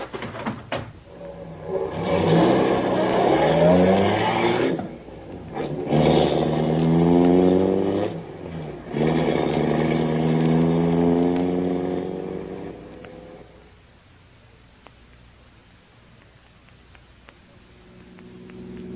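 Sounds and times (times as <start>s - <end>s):
car engine revving hard and accelerating during a chase: 1.3s - 13.5s, 17.8s - 18.9s.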